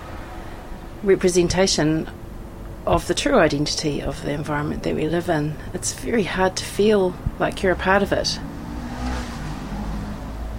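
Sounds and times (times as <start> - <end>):
steady road traffic: 0.0 - 10.5
speech: 1.0 - 2.2, 2.8 - 8.5
car engine rumbling and whooshing past: 8.3 - 10.5.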